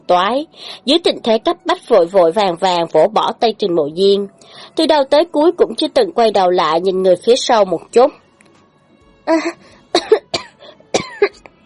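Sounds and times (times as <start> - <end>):
speech: 0.1 - 8.2, 9.3 - 9.7
woman lying in bed coughing violently and dryly: 9.3 - 11.5.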